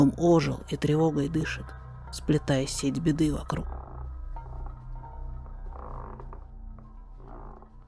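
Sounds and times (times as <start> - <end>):
speech: 0.0 - 3.8
wooden floorboards creaking in an old house: 3.6 - 7.8.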